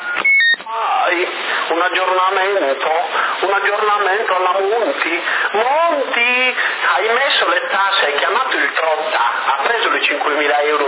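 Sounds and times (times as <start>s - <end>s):
CB radio repeater two-tone electronic beep: 0.0s - 0.7s
speech: 1.8s - 10.8s.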